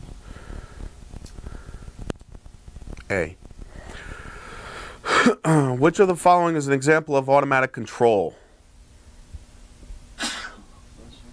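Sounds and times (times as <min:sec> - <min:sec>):
quiet hum: 0:00.0 - 0:11.3
speech: 0:03.1 - 0:03.4, 0:05.2 - 0:08.4
person sneezing: 0:10.2 - 0:10.8.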